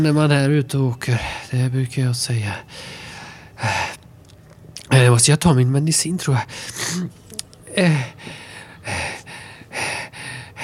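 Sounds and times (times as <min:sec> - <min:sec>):
speech: 0:00.0 - 0:03.8, 0:05.1 - 0:09.0
heavy rapid breathing: 0:02.6 - 0:04.0, 0:07.7 - 0:10.6.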